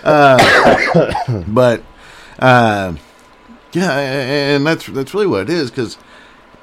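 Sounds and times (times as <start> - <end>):
person clearing throat: 0.0 - 1.5
speech: 0.0 - 3.1, 3.7 - 6.2
person coughing: 0.1 - 1.5.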